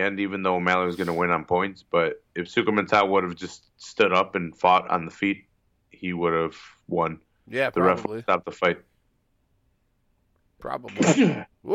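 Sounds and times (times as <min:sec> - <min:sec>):
speech: 0:00.0 - 0:08.9, 0:10.6 - 0:11.7
another voice talking: 0:00.8 - 0:01.2, 0:07.5 - 0:08.4
sneeze: 0:10.9 - 0:11.7.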